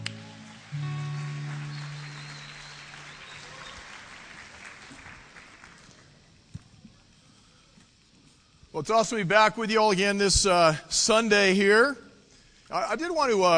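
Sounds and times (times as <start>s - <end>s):
brief low tone: 0.0s - 3.1s
church audience applauding a preacher: 0.0s - 6.2s
speech: 8.8s - 12.0s, 12.7s - 13.5s.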